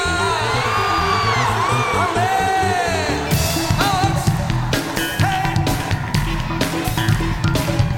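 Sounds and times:
church congregation shouting hallelujah at a worship service: 0.0 - 7.8.

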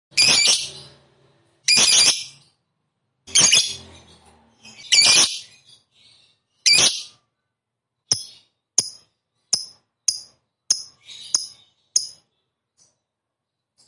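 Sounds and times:
fighter-type lovebird screeching: 1.7 - 2.4, 3.3 - 3.8, 4.8 - 5.5.

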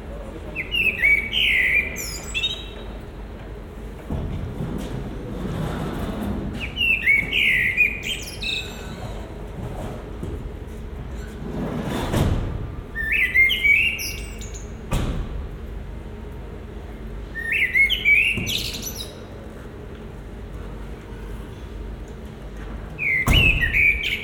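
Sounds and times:
low background noise: 0.0 - 24.2
common blackbird warbling phrases in Marolles, Brussels, Belgium: 0.5 - 2.9, 6.6 - 9.0, 12.9 - 14.8, 17.3 - 19.4, 23.0 - 24.2.

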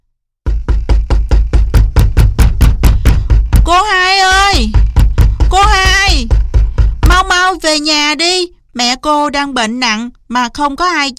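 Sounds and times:
urgent loud hollow knocking on a door: 0.4 - 7.7
speech: 7.8 - 11.1.

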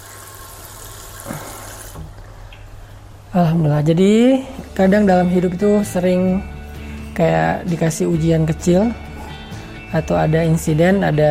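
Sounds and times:
water running from a tap: 0.0 - 2.1
speech: 3.4 - 6.5, 7.2 - 9.0, 9.9 - 11.2.

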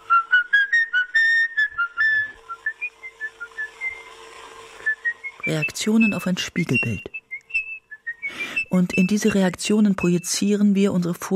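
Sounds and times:
man whistling a tune: 0.0 - 4.1, 4.8 - 9.4
speech: 5.5 - 7.1, 8.7 - 11.3.

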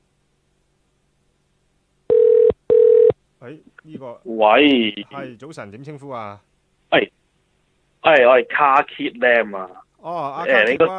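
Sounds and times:
telephone call connecting tone: 2.1 - 3.1
speech: 3.4 - 7.2, 8.0 - 10.9.

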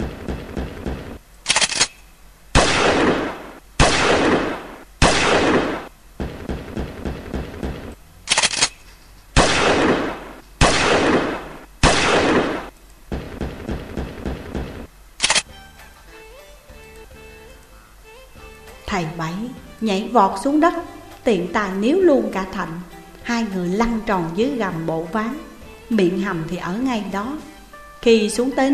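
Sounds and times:
loud bursts of gunfire: 0.0 - 15.5
speech: 19.0 - 28.7.

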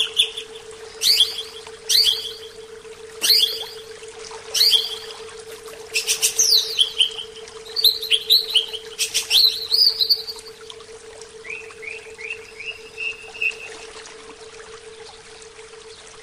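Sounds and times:
Oriental magpie-robin song: 0.0 - 2.6, 3.2 - 3.9, 4.5 - 5.2, 5.9 - 10.5, 11.4 - 13.8.

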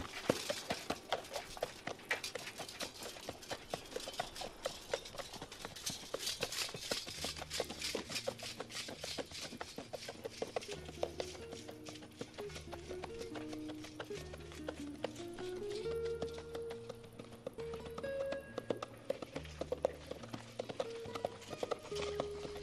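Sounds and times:
horse galloping across a grassy valley: 0.0 - 22.6
music with a repeating low pattern and a melody: 7.0 - 22.6.

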